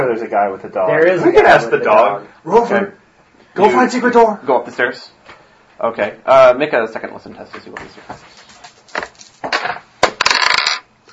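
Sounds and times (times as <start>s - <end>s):
speech: 0.1s - 3.0s, 3.6s - 5.2s, 5.8s - 8.4s
dice rolled during a tabletop role-playing game: 8.9s - 10.9s.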